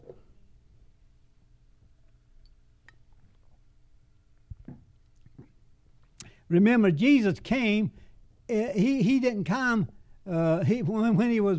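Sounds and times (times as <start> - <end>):
low hum: 0.0 - 11.5
person sipping water: 2.0 - 3.8, 4.9 - 6.4
speech: 6.5 - 11.5.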